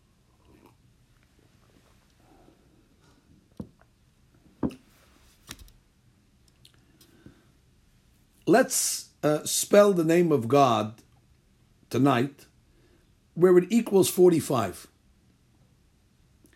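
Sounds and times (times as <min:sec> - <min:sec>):
person sipping tea: 0:00.0 - 0:02.4
speech: 0:08.5 - 0:11.0, 0:11.9 - 0:12.5, 0:13.4 - 0:14.9.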